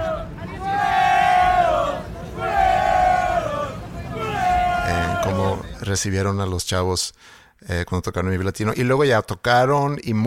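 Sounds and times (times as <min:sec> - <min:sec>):
crowd of people shouting together in long rising chants: 0:00.0 - 0:05.8
speech: 0:05.9 - 0:10.2.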